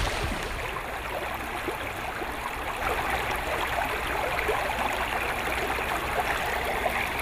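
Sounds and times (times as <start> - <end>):
Colorado River current rushing around an 18-foot rowed boat in the Grand Canyon: 0.0 - 3.6
faint splashes: 0.0 - 7.2.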